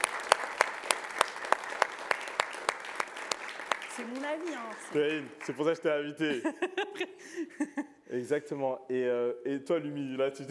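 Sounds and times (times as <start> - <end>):
hands clapping: 0.0 - 5.8
speech: 4.0 - 10.4
laughter: 6.2 - 8.0.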